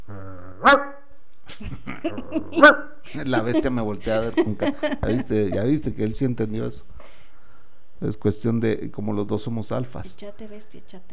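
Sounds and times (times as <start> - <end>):
person imitating a guanaco dog barking with loud voiced yelps: 0.0 - 1.0, 2.6 - 2.9
speech: 0.7 - 0.9, 1.6 - 7.0, 8.0 - 11.1.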